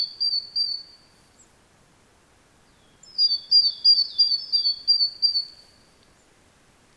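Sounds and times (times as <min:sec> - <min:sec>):
great tit Parus major singing high sliding notes: 0:00.0 - 0:01.0, 0:02.7 - 0:05.8.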